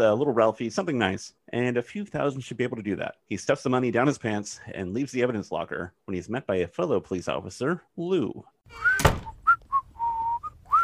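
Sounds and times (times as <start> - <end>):
speech: 0.0 - 9.0
person whistling a tune: 8.7 - 10.8.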